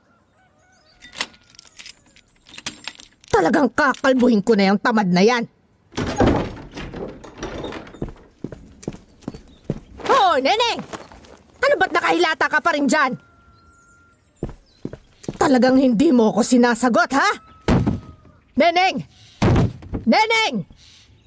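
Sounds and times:
door opening with a rush of noise: 0:01.0 - 0:04.4, 0:05.9 - 0:10.0, 0:14.4 - 0:15.5
lock being worked with metallic clicks and rattles: 0:01.0 - 0:04.5, 0:05.9 - 0:09.8
speech: 0:03.4 - 0:05.6, 0:10.4 - 0:10.9, 0:11.7 - 0:13.3, 0:15.5 - 0:17.5, 0:18.6 - 0:19.2, 0:20.1 - 0:20.7.

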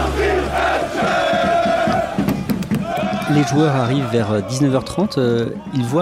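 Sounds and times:
football supporters chanting in unison outdoors: 0:00.0 - 0:04.8
speech: 0:03.3 - 0:06.0.

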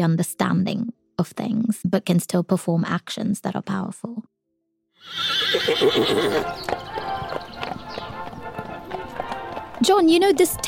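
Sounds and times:
speech: 0:00.0 - 0:04.3, 0:05.0 - 0:06.8, 0:09.8 - 0:10.6
horse neighing: 0:05.0 - 0:07.0
hooves clopping and shuffling on a hard surface: 0:05.5 - 0:10.6.

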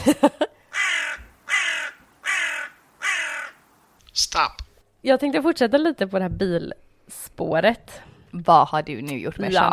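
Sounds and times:
crow cawing: 0:00.7 - 0:03.7
speech: 0:04.4 - 0:09.7.

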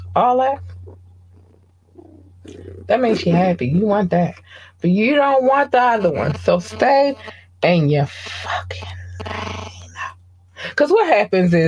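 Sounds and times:
speech: 0:00.2 - 0:01.0, 0:02.4 - 0:09.8, 0:10.6 - 0:11.6
female cat purring: 0:00.2 - 0:04.1.

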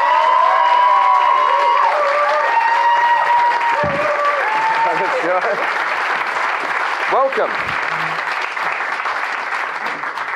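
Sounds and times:
scattered cheers and whoops from audience: 0:00.0 - 0:05.4
sustained applause from a large audience: 0:00.0 - 0:10.3
speech: 0:07.1 - 0:08.2.

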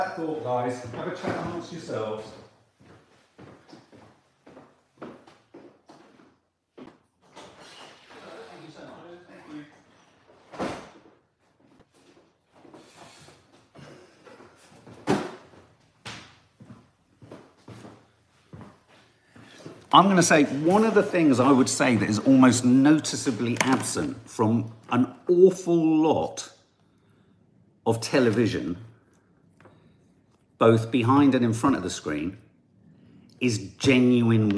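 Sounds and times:
speech: 0:00.0 - 0:02.4, 0:19.9 - 0:26.6, 0:27.9 - 0:28.9, 0:30.6 - 0:32.4, 0:33.4 - 0:34.5
door opening and closing: 0:09.5 - 0:11.2, 0:23.3 - 0:24.1.

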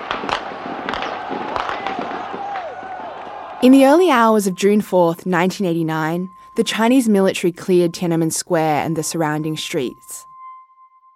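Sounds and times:
automatic rifle fire in the streets: 0:00.0 - 0:02.4
dense noisy crowd of people running and shouting: 0:00.0 - 0:03.6
speech: 0:03.6 - 0:10.3.

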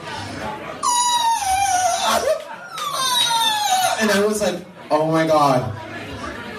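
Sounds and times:
voice imitating loud wailing sobs of crying: 0:00.8 - 0:04.0
speech: 0:04.0 - 0:05.8.

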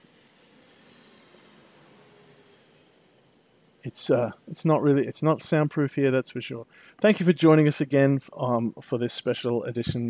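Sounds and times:
airplane flying overhead: 0:00.0 - 0:04.5
speech: 0:03.8 - 0:10.0.

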